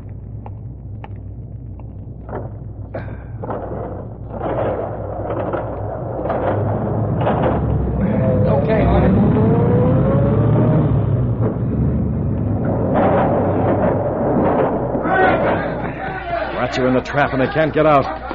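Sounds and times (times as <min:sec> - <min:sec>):
garage door thumps and clanks: 0:00.0 - 0:17.2
heavy garage door rolling along its track: 0:00.0 - 0:18.3
car engine revving as a car drives in through an opened door: 0:05.3 - 0:15.0
laughter: 0:15.1 - 0:18.3
speech: 0:16.8 - 0:18.2.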